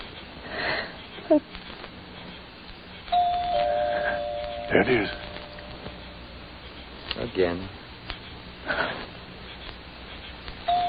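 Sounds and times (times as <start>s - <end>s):
quiet rustling: 0.0s - 10.7s
speech: 1.3s - 1.6s, 4.7s - 5.2s, 7.4s - 7.8s
doorbell ringing: 3.1s - 6.0s, 10.7s - 10.8s.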